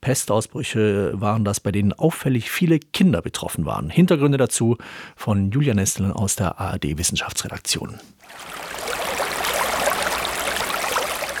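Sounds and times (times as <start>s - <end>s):
speech: 0.0s - 8.9s
river water rushing and babbling: 8.2s - 11.3s.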